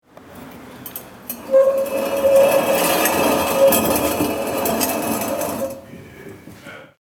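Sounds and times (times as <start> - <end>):
metal table being pushed: 1.3 - 5.8.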